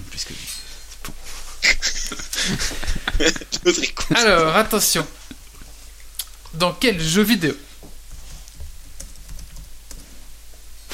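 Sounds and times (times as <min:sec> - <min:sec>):
low steady hum: 0:00.0 - 0:10.9
speech: 0:00.2 - 0:00.6, 0:02.5 - 0:05.2, 0:06.6 - 0:07.7
laughter: 0:01.6 - 0:04.4
typing on a keyboard: 0:09.0 - 0:10.0.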